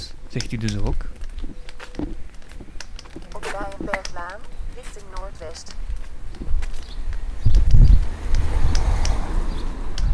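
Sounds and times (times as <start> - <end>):
faint scattered clicks and rustles, possibly footsteps: 0.0 - 10.1
wind buffeting a microphone in low rumbling gusts: 0.0 - 10.1
speech: 0.3 - 2.2, 4.3 - 6.4.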